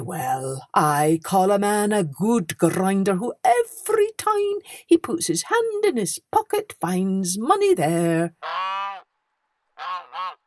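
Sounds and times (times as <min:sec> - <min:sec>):
speech: 0:00.1 - 0:08.8
goose honking: 0:08.4 - 0:09.1, 0:09.8 - 0:10.4.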